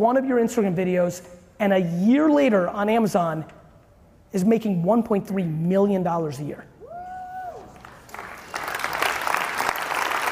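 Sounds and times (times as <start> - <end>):
speech: 0.0 - 3.6, 4.3 - 6.7
audience applause: 7.7 - 10.3.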